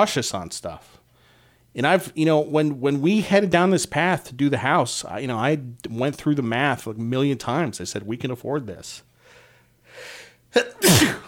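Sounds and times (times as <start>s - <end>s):
speech: 0.0s - 1.0s, 1.8s - 9.1s, 10.0s - 11.2s
person sneezing: 10.5s - 11.2s.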